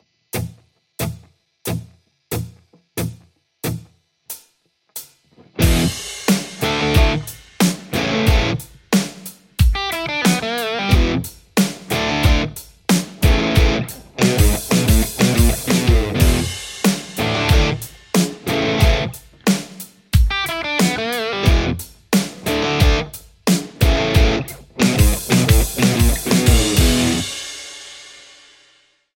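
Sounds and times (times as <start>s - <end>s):
Les Paul electric guitar: 5.3s - 8.8s, 9.7s - 23.2s, 23.8s - 27.4s.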